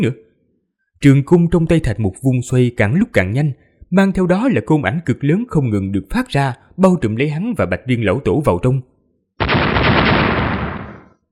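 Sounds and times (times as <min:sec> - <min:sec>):
speech: 0:00.0 - 0:00.2, 0:01.0 - 0:09.5
series of loud explosions: 0:09.4 - 0:11.2.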